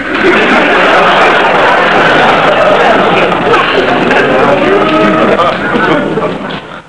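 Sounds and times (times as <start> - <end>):
laugh track: 0.0 - 6.8.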